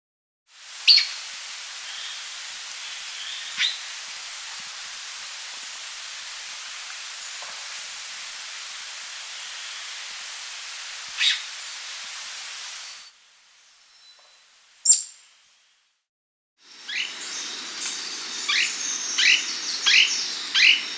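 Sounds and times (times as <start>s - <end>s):
Slaty gnateater Conopophaga ardesiaca calling in the Andes of South America: 0.9s - 1.2s, 1.8s - 3.9s, 11.2s - 11.5s, 16.7s - 20.9s.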